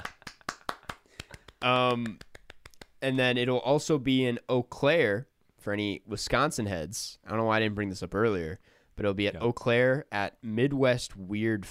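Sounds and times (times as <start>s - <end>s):
one person clapping hands imitating a soundboard applause effect: 0.0s - 3.0s
speech: 1.6s - 2.3s, 3.0s - 11.6s.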